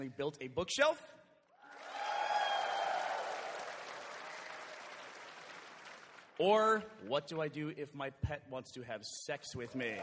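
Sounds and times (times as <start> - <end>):
speech: 0.0 - 1.2, 6.4 - 10.0
audience applause: 1.6 - 6.4, 9.9 - 10.0.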